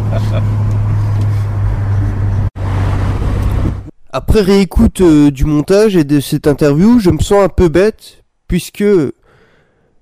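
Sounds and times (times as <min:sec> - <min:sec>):
engine drone inside a moving car: 0:00.0 - 0:04.4
road rumble from inside a moving car: 0:00.0 - 0:06.2
speech: 0:04.2 - 0:09.2.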